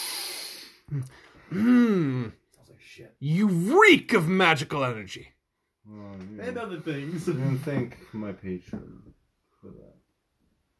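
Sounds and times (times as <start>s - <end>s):
long forceful sniff: 0.0s - 1.2s
person grunting: 0.9s - 2.4s
person humming a wavering hum: 0.9s - 2.4s
speech: 0.9s - 5.3s, 5.9s - 10.0s.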